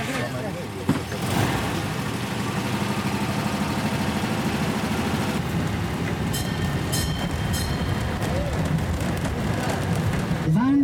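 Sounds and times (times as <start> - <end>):
small tourist train rumbling along the main street on Norrbyskär: 0.0 - 10.7
high metallic squeaks from train wheels: 5.4 - 10.5.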